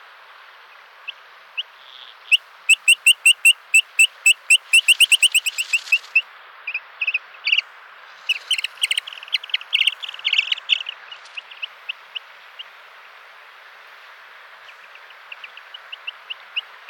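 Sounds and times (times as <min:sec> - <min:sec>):
Eurasian dotterel calling: 0:01.8 - 0:06.3, 0:07.0 - 0:12.0.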